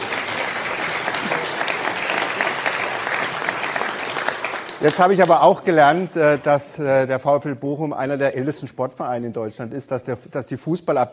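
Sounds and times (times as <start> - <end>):
crowd applauding: 0.0 - 6.5
speech: 4.8 - 11.1.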